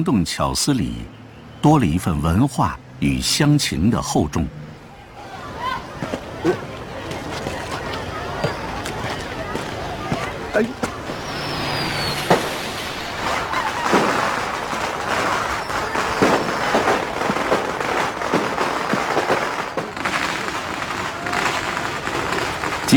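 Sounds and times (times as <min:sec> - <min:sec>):
speech: 0:00.0 - 0:04.6, 0:06.4 - 0:06.7, 0:10.6 - 0:10.8
long string of firecrackers at a wedding: 0:06.0 - 0:22.9.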